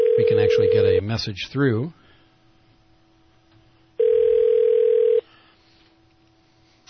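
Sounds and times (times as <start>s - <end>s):
telephone ringback tone on a transferred call: 0.0s - 1.0s, 4.0s - 5.3s
speech: 0.2s - 2.0s.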